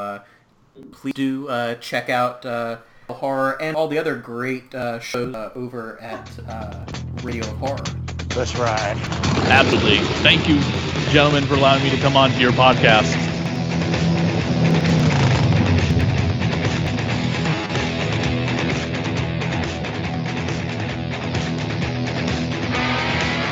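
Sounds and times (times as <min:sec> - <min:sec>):
speech: 0:00.2 - 0:13.3
motorcycle revving and driving away: 0:07.8 - 0:23.4.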